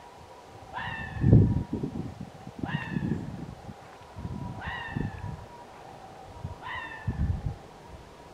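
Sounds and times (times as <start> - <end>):
red fox giving hoarse falling barks: 0.7 - 1.3, 2.6 - 3.2, 4.5 - 8.2.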